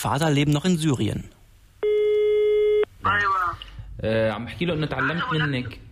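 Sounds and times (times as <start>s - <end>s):
speech: 0.0s - 1.4s, 3.0s - 5.9s
electronic telephone line tone during a call: 1.8s - 2.9s
man speaking over the phone line during a call from Germany to Syria: 3.0s - 3.6s, 4.8s - 5.8s.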